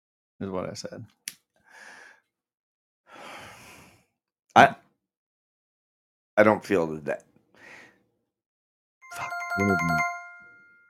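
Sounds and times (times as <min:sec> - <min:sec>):
speech: 0:00.4 - 0:01.2, 0:04.6 - 0:04.8, 0:06.4 - 0:07.3, 0:09.2 - 0:10.1
bright electronic phone ring of an incoming call: 0:09.0 - 0:10.8.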